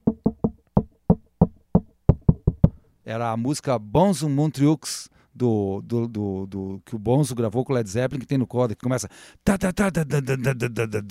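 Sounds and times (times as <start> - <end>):
knuckles knocking a rock drum beat on a school desk: 0.0 - 2.8
speech: 3.1 - 11.0.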